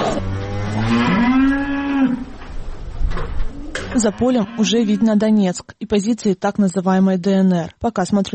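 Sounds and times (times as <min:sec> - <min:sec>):
cow mooing on an agricultural college farm near Donetsk: 0:00.1 - 0:02.5, 0:03.5 - 0:05.2
speech: 0:04.0 - 0:08.3.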